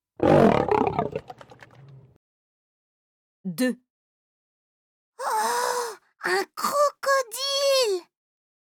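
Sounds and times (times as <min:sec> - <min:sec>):
lion roaring: 0:00.2 - 0:02.0
speech: 0:03.6 - 0:03.8, 0:06.2 - 0:08.1.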